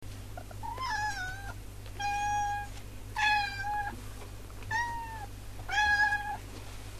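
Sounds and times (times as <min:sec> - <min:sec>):
steady low hum: 0:00.0 - 0:06.9
cat meowing: 0:00.6 - 0:03.9, 0:04.7 - 0:06.4.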